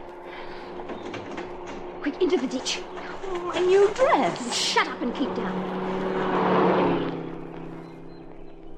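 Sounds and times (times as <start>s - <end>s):
speech: 2.1s - 5.8s
car engine droning past: 3.0s - 8.7s.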